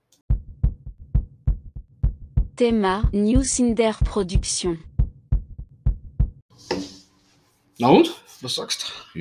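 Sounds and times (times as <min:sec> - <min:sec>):
fast heartbeat sound effect in a jingle: 0:00.3 - 0:06.5
speech: 0:02.6 - 0:04.9, 0:07.8 - 0:09.2.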